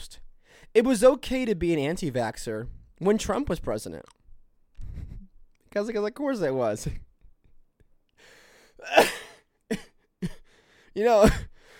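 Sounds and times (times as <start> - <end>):
speech: 0.7 - 4.2, 5.7 - 7.0, 11.0 - 11.5
harsh coughing after hard laughter: 8.8 - 10.6, 11.2 - 11.7.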